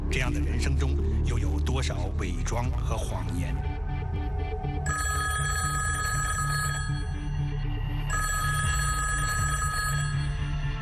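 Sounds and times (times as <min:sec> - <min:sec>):
speech: 0:00.1 - 0:03.7
telephone bell ringing: 0:04.9 - 0:07.4, 0:08.1 - 0:10.6.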